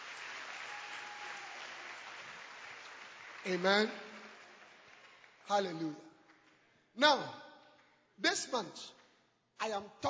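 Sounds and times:
large group applauding: 0.0s - 5.5s
speech: 3.4s - 4.1s, 5.5s - 6.1s, 7.0s - 7.4s, 8.2s - 9.0s, 9.6s - 10.0s.

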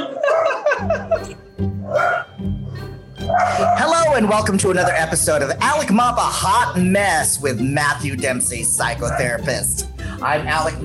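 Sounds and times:
dogs barking excitedly with sharp loud yips: 0.0s - 0.8s, 3.2s - 5.3s, 9.0s - 9.4s
laughter: 0.0s - 1.4s
speech: 4.2s - 10.8s.

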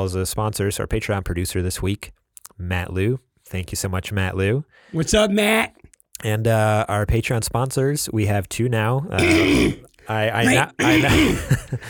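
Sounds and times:
speech: 0.0s - 11.8s
quieter short grunts: 9.2s - 11.5s
person clearing throat: 9.2s - 11.6s.

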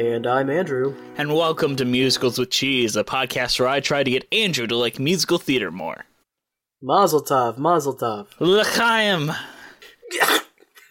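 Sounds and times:
speech: 0.0s - 6.1s, 6.8s - 10.4s
person sneezing: 9.8s - 10.8s.

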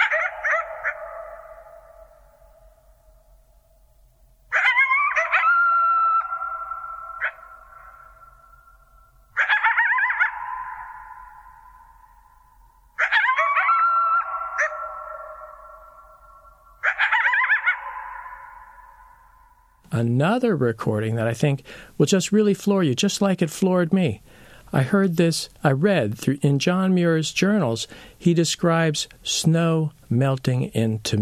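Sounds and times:
coyotes howling and yipping: 0.0s - 2.9s, 4.5s - 19.8s
speech: 20.0s - 31.2s.

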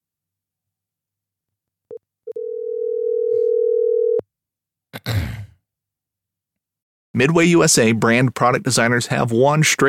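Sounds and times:
phone line beeps on an outgoing call: 2.3s - 4.2s
speech: 5.0s - 5.4s, 7.2s - 9.8s.

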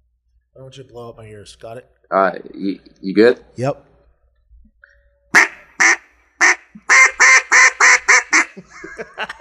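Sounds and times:
speech: 0.6s - 3.9s
duck call quacking blown by champion duck caller: 5.4s - 8.6s
soft quick duck call chuckles: 5.4s - 9.3s.

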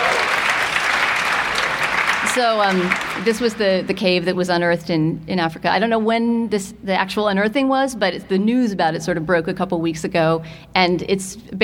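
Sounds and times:
audience clapping: 0.0s - 3.9s
speech: 2.4s - 11.6s.

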